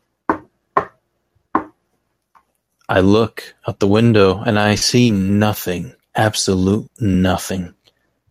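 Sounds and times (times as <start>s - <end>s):
knocking on a door: 0.3s - 1.8s
speech: 2.9s - 7.8s.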